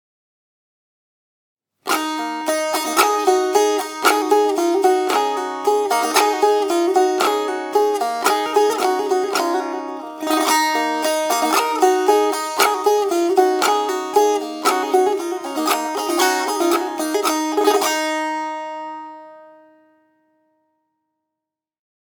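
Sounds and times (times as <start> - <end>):
premium tanbur playing: 1.9 - 19.5.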